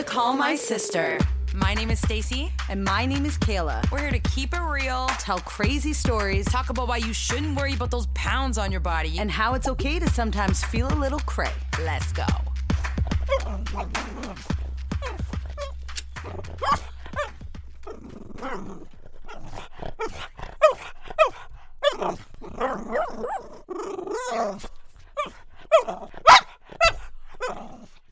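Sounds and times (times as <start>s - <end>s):
speech: 0.1s - 12.5s, 13.5s - 15.2s, 24.3s - 24.8s
dog growling: 12.6s - 28.1s
dog barking: 12.8s - 17.5s, 19.3s - 23.4s, 25.2s - 27.6s.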